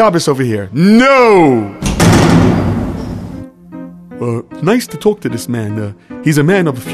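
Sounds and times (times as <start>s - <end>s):
speech: 0.0s - 2.6s, 4.2s - 6.9s
banging on a wooden door: 1.8s - 3.5s.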